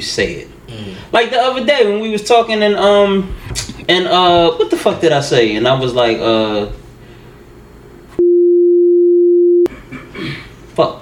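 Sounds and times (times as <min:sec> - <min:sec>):
speech: 0:00.0 - 0:06.8, 0:10.8 - 0:10.9
censor beep: 0:08.2 - 0:09.7.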